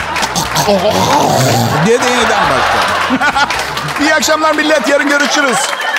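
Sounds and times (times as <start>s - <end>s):
person vocally imitating a snorer starting back up: 0.2s - 1.9s
person laughing: 0.2s - 3.6s
speech: 0.6s - 5.8s.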